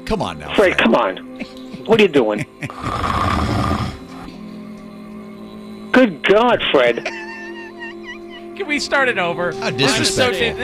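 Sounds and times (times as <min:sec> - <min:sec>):
speech: 0:00.1 - 0:03.3, 0:06.0 - 0:07.2, 0:08.6 - 0:10.6
laughter: 0:00.6 - 0:03.0, 0:06.7 - 0:09.0
loud rasping snoring sound effect from soundboard button: 0:02.7 - 0:04.3.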